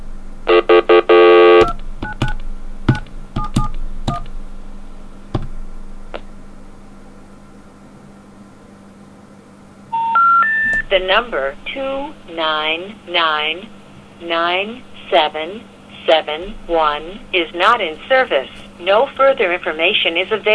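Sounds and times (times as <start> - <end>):
phone line noise: 0.5 - 1.7, 9.9 - 10.9
telephone tone: 0.5 - 1.8, 9.9 - 10.9
speech: 11.0 - 20.5.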